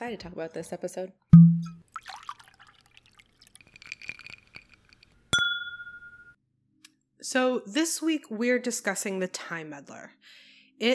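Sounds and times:
speech: 0.1s - 1.4s, 7.3s - 10.9s
liquid pouring into a glass: 1.4s - 5.2s
bright glass clink: 1.4s - 6.4s.

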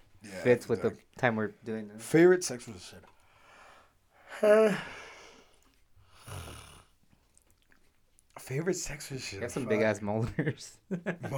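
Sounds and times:
speech: 0.4s - 3.1s, 4.4s - 5.0s, 8.5s - 11.3s
person yawning: 4.3s - 5.1s
laughter: 9.7s - 11.3s.

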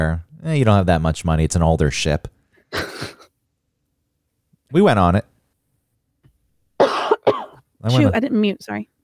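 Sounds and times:
speech: 0.0s - 3.2s, 4.7s - 5.3s, 7.8s - 8.9s
person coughing: 2.7s - 3.3s, 6.8s - 8.2s.

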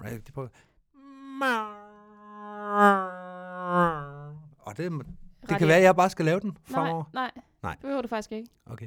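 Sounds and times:
speech: 0.0s - 0.7s, 1.4s - 1.8s, 2.7s - 3.1s, 4.7s - 8.8s
voice imitating an airplane with a buzzing hum: 5.5s - 5.8s, 6.7s - 7.0s.

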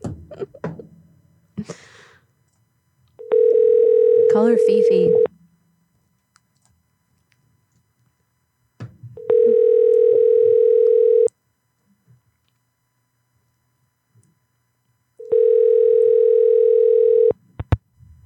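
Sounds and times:
telephone line tone during a call: 3.2s - 5.3s, 9.2s - 11.3s, 15.2s - 17.4s
speech: 4.4s - 5.3s.

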